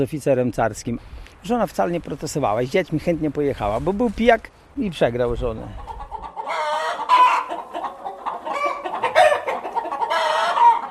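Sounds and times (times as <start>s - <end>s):
speech: 0.0s - 5.9s
several hens clucking and squawking in a chicken coop: 5.6s - 10.8s.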